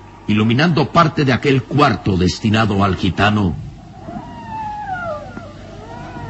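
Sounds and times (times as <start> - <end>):
low steady rumble: 0.0 - 6.2
speech: 0.3 - 3.6
mournful eerie howl echoing on a full-moon night after a storm: 3.8 - 6.2.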